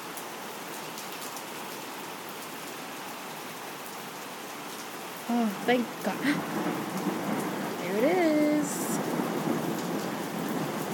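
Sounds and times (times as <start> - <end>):
rain pattering on surfaces outside: 0.0 - 10.9
speech: 5.3 - 7.2.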